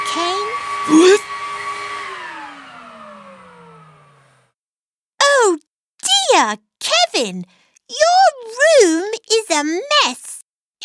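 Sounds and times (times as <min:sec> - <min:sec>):
vacuum cleaner hoovering a pet's cage: 0:00.0 - 0:04.5
speech: 0:00.9 - 0:01.2, 0:06.4 - 0:10.8.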